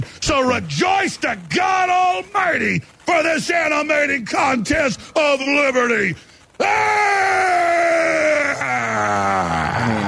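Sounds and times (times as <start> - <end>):
speech: 0.3 - 10.0
man screaming long and strained: 6.6 - 10.0.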